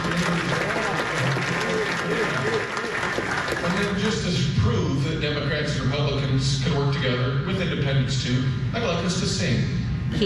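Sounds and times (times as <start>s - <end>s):
audience applauding at a town hall meeting: 0.0s - 4.3s
crowd voices: 0.0s - 6.2s
speech: 6.4s - 10.2s.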